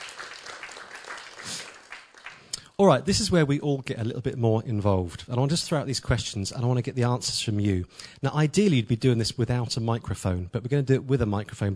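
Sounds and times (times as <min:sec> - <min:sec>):
audience applause at an event: 0:00.0 - 0:02.5
speech: 0:02.8 - 0:11.7.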